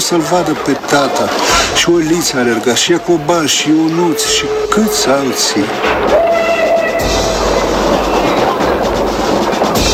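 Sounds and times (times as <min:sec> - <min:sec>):
train rumbling on rails: 0:00.0 - 0:09.9
train wheels clattering: 0:00.0 - 0:09.9
speech: 0:00.1 - 0:07.2.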